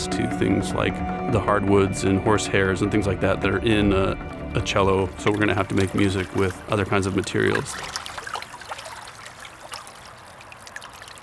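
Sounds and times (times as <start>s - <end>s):
speech: 0.1s - 8.0s
lake water lapping against the shore: 4.1s - 11.2s
small splashes and trickles of lake water: 4.2s - 11.2s.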